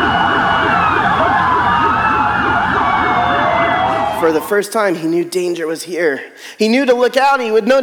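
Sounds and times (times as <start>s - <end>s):
emergency sirens wailing: 0.0s - 4.7s
speech: 4.3s - 7.8s.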